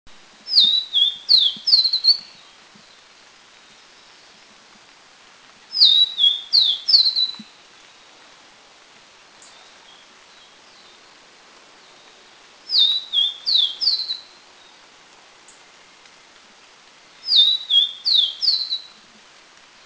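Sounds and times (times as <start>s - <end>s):
Vivid Niltava in Taiwan: 0.5s - 3.0s, 5.7s - 7.6s, 12.7s - 14.4s, 17.2s - 19.0s.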